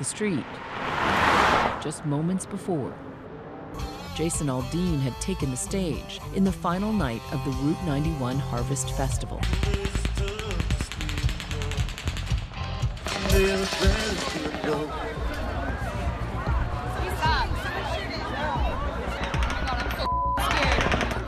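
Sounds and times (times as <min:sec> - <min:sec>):
speech: 0:00.0 - 0:01.2, 0:01.8 - 0:03.1, 0:03.8 - 0:10.6, 0:13.4 - 0:15.2
rapid automatic gunfire: 0:09.4 - 0:12.4
large crowd shouting and talking: 0:13.1 - 0:21.2.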